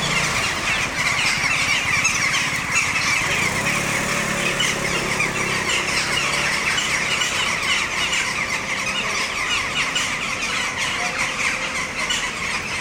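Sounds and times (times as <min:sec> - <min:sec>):
common starling flock chattering in trees: 0:00.0 - 0:12.8.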